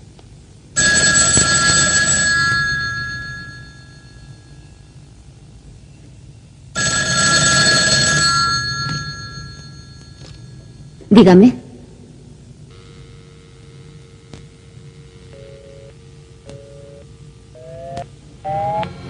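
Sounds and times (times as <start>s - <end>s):
station telephone ringing in a metro station: 0.8s - 5.0s, 6.8s - 11.1s, 14.7s - 18.0s
speech: 11.2s - 11.6s.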